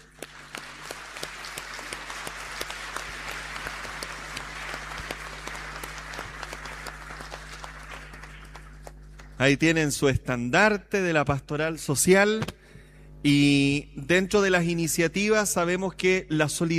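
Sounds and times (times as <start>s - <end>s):
crowd applauding: 0.0s - 9.5s
speech: 9.4s - 12.6s, 13.2s - 16.7s.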